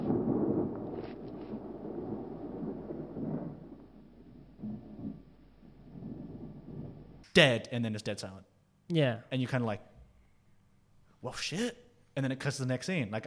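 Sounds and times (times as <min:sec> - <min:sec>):
low rolling thunder in a horror film scene: 0:00.0 - 0:07.2
wind in a horror film scene: 0:00.0 - 0:07.2
speech: 0:07.4 - 0:09.9, 0:11.2 - 0:13.2.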